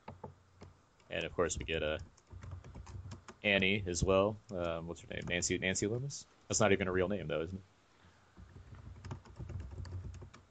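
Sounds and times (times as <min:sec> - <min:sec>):
speech: 0:01.1 - 0:02.2, 0:03.4 - 0:07.7
typing on a computer keyboard: 0:01.5 - 0:03.4, 0:08.4 - 0:10.4.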